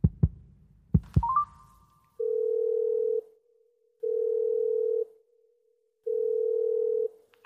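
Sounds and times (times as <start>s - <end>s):
phone call ringback tone: 2.2s - 3.2s, 4.0s - 5.1s, 6.1s - 7.1s.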